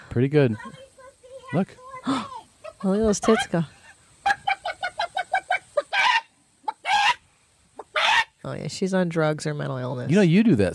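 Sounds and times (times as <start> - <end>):
speech: 0.2 - 0.8, 1.5 - 3.8, 8.5 - 10.7
person imitating chicken clucking and squawking: 2.0 - 7.2.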